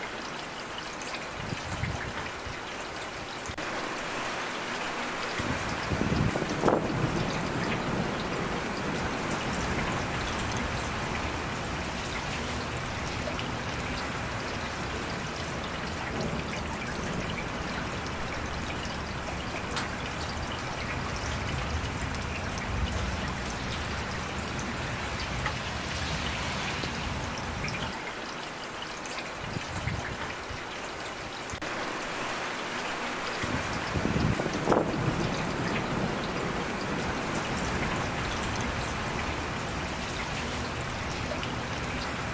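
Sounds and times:
steady hiss of rain: 0.0s - 42.3s
thunder rumbling low and heavy: 5.4s - 28.0s, 33.4s - 42.3s.

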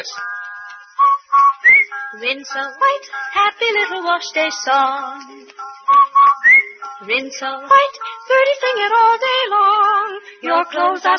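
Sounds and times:
speech: 0.0s - 0.4s, 1.9s - 11.1s
person whistling a jingle tune: 0.9s - 2.0s, 5.8s - 6.8s.

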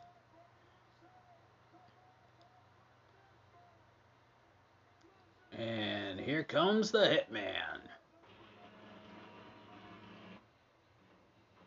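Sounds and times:
speech: 5.6s - 7.9s
printer whirring and humming as it powers down: 8.3s - 10.4s.

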